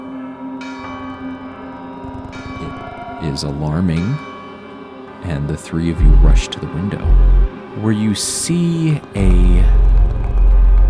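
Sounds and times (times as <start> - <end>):
city warning and alarm bells ringing together: 0.0 - 9.7
speech: 3.2 - 4.3, 5.2 - 10.0.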